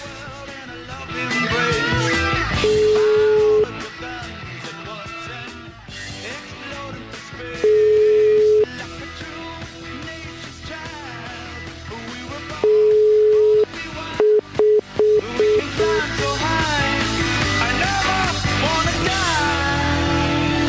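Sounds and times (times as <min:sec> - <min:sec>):
loud continuous music: 0:00.0 - 0:20.6
telephone ringing tones on an outgoing call: 0:02.6 - 0:03.8, 0:07.6 - 0:08.7, 0:12.6 - 0:15.8.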